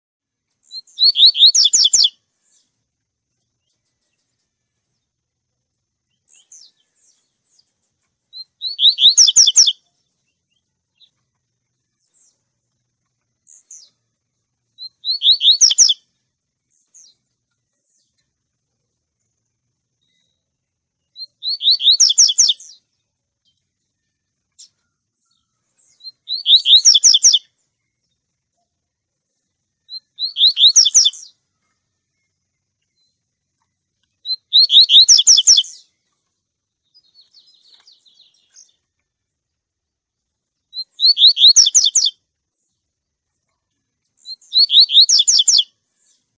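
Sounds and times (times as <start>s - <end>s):
coleiro songbird singing tui tui: 0.5s - 46.3s.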